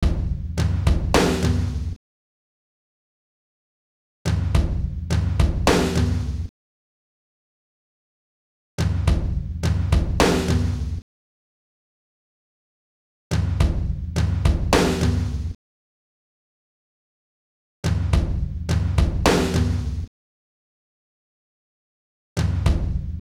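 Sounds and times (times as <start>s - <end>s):
drum kit: 0.0s - 2.0s, 4.3s - 6.5s, 8.8s - 11.0s, 13.3s - 15.6s, 17.8s - 20.1s, 22.4s - 23.2s.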